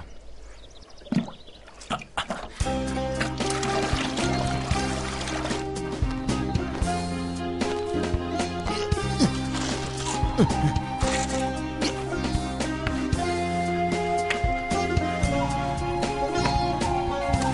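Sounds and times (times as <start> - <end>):
water pouring and splashing while watering plants: 1.0 - 6.2
sustained musical backdrop: 2.5 - 17.5
speech: 10.4 - 10.7.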